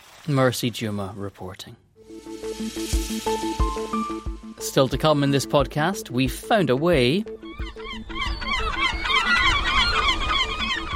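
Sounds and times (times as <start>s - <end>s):
speech: 0.2s - 7.7s
flock of seagulls squawking: 7.4s - 10.9s.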